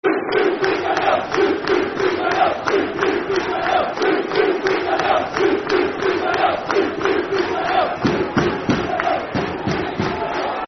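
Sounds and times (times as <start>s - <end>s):
football crowd chanting: 0.0s - 10.6s.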